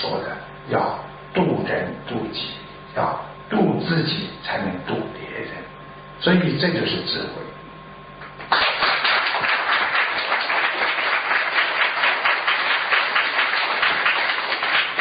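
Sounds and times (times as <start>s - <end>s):
speech: 0.0s - 5.6s, 6.2s - 7.6s, 8.5s - 8.8s
crowd applauding: 8.4s - 15.0s.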